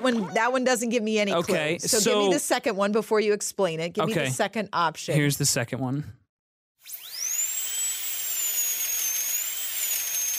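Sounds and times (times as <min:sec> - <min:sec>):
speech: 0:00.0 - 0:06.2
dentist's drill whining: 0:06.8 - 0:10.3.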